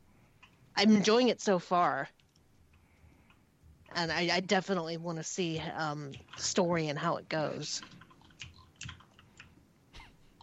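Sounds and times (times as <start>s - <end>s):
speech: 0.8s - 2.2s, 4.0s - 8.0s
typing on a computer keyboard on an unmuted call: 5.5s - 6.6s, 7.8s - 9.6s.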